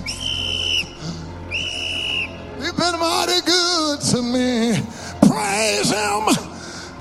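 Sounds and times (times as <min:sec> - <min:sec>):
shrill whistle being blown: 0:00.0 - 0:02.5
speech: 0:02.8 - 0:05.0, 0:05.6 - 0:06.5.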